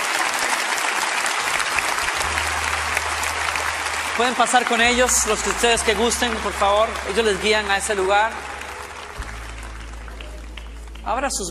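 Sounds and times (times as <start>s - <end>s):
church congregation applauding at a worship service: 0.0s - 11.4s
speech: 4.2s - 8.5s, 11.1s - 11.4s.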